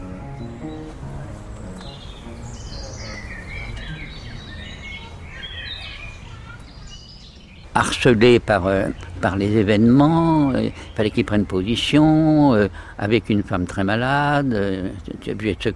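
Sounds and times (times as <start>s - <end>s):
birds chirping and singing: 0.0s - 12.6s
speech: 7.8s - 15.7s.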